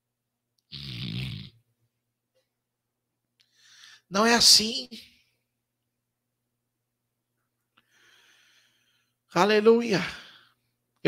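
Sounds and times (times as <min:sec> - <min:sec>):
voice imitating a loud rasping snore: 0:00.7 - 0:01.6
speech: 0:04.1 - 0:05.1, 0:09.4 - 0:10.2.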